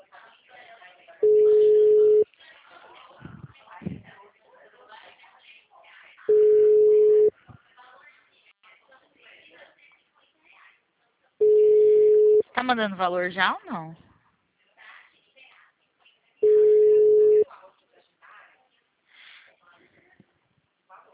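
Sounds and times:
ringback tone of an outgoing phone call: 0:01.2 - 0:02.2, 0:06.3 - 0:07.3, 0:11.4 - 0:12.4, 0:16.4 - 0:17.4
speech: 0:12.7 - 0:14.0.

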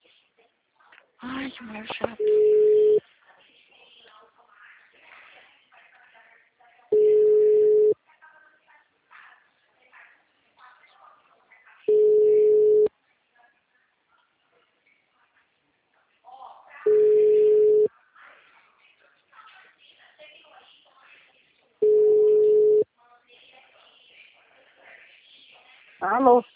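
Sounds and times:
speech: 0:01.2 - 0:02.8, 0:26.2 - 0:26.5
telephone busy tone after a dropped call: 0:02.2 - 0:03.0, 0:06.9 - 0:08.0, 0:11.9 - 0:12.9, 0:16.9 - 0:17.9, 0:21.8 - 0:22.8.

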